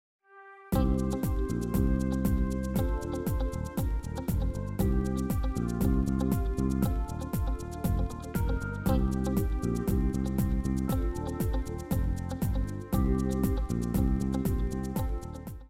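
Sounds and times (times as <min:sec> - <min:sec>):
chillout groove music: 0:00.8 - 0:15.6.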